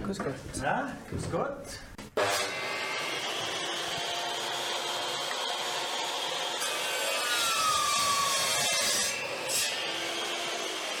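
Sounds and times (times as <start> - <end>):
speech: 0.1 - 2.0
wood being sawn and worked by a class in a school woodworking room: 2.2 - 10.9.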